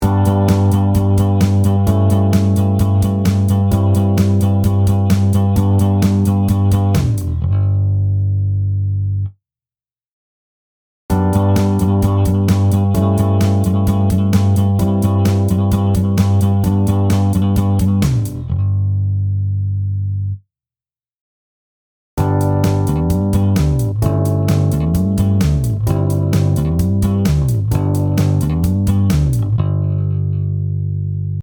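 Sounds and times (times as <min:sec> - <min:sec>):
bass phrase: 0:00.0 - 0:09.3, 0:11.1 - 0:20.4, 0:22.2 - 0:31.4.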